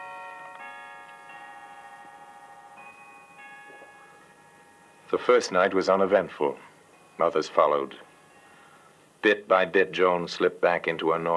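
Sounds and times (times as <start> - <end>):
clock chiming: 0.0 - 8.8
speech: 5.1 - 8.1, 9.2 - 11.3.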